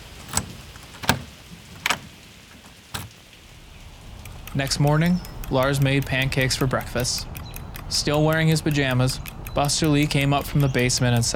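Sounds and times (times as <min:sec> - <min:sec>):
front door lock clicking: 0:00.0 - 0:03.2
speech: 0:04.6 - 0:07.3, 0:07.9 - 0:11.3.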